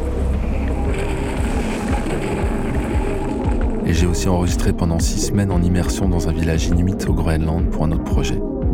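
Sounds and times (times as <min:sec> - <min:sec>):
rushing water aboard a racing sailboat at sea: 0:00.0 - 0:03.9
wind roaring aboard a racing sailboat at sea: 0:00.0 - 0:04.6
speech: 0:03.9 - 0:08.6.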